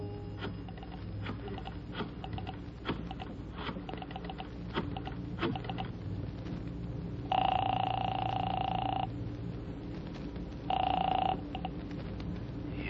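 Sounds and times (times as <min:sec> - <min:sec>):
steady crackling hiss: 0:00.0 - 0:12.8
telephone ringing on the line: 0:07.3 - 0:09.1, 0:10.7 - 0:11.6.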